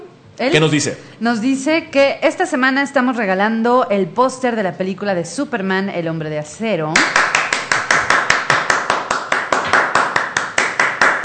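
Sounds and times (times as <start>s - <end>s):
speech: 0.4s - 7.3s
hands clapping in a fast steady rhythm: 7.0s - 11.2s.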